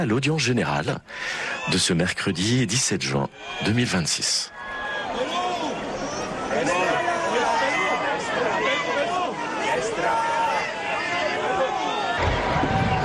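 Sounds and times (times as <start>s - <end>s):
speech: 0.0s - 5.2s
large crowd of pilgrims cheering in a square: 1.3s - 13.0s.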